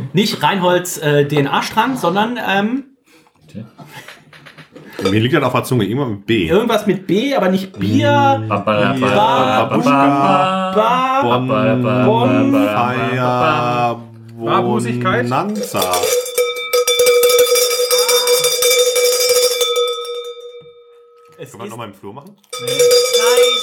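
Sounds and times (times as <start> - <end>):
speech: 0.2 - 2.9, 3.5 - 4.1, 5.0 - 16.2, 21.4 - 23.6
loud bells ringing with a sustained shimmering tone: 15.6 - 21.4, 22.5 - 23.6.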